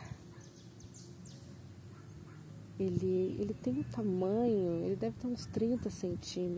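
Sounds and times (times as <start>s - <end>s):
white-headed bird chirping in a town square: 0.0s - 5.9s
low outdoor rumble in a town square: 0.0s - 6.5s
speech: 2.8s - 6.5s.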